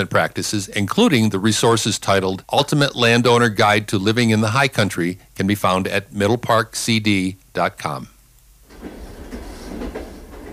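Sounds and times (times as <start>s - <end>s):
speech: 0.0s - 8.1s
morning train wheels rumbling on track heard from aboard: 8.7s - 10.5s.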